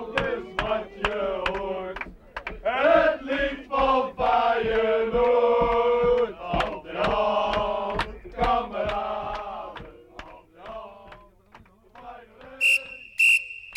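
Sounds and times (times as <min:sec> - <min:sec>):
crowd chanting and singing: 0:00.0 - 0:13.2
referee's whistle blasts: 0:12.6 - 0:13.7.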